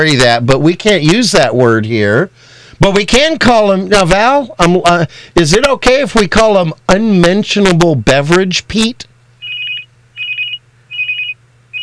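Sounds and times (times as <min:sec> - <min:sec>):
speech: 0:00.0 - 0:09.1
telephone ringing with an electronic trill: 0:09.4 - 0:11.8.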